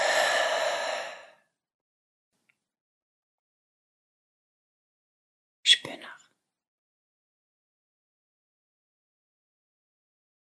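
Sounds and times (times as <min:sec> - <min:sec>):
slow airy exhale through a slightly open mouth: 0:00.0 - 0:01.5.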